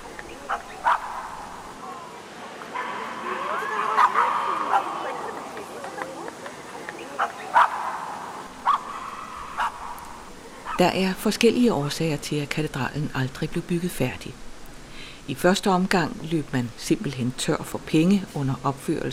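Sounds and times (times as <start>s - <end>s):
outdoor crowd murmur with people chattering outside a cathedral: 0.0s - 10.8s
several dogs barking and yipping outside a cathedral: 0.4s - 1.7s, 2.7s - 6.1s, 6.9s - 10.8s
speech: 10.8s - 14.5s, 15.3s - 19.1s.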